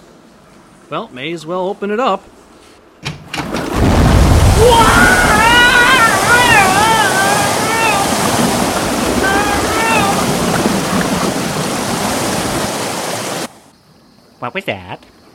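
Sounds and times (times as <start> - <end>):
speech: 0.9 - 2.4, 4.6 - 5.2, 14.4 - 15.1
water rushing: 3.2 - 13.7
wavering sliding voice-like tones: 4.6 - 8.3, 9.1 - 10.4.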